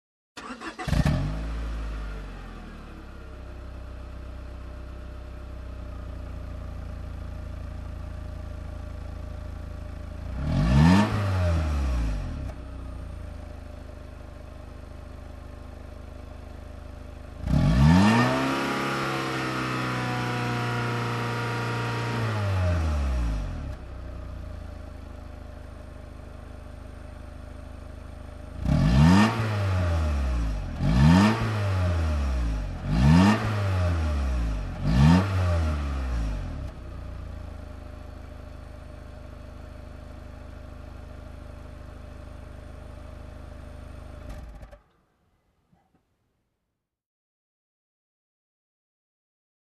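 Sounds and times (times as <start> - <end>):
car engine revving: 0.4 - 2.6, 10.2 - 12.6, 17.4 - 23.8, 28.5 - 36.7.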